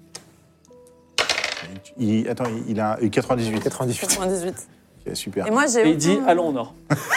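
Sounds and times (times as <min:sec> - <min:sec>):
dice rolling: 0:01.2 - 0:01.8
speech: 0:01.6 - 0:07.1.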